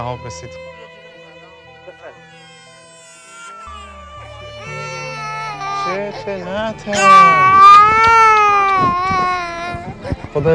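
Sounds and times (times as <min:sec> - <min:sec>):
speech: 0:00.0 - 0:00.8, 0:05.9 - 0:08.2, 0:10.0 - 0:10.5
young child frightened by an earthquake crying in the Zahab plain: 0:02.4 - 0:06.2, 0:06.9 - 0:10.5.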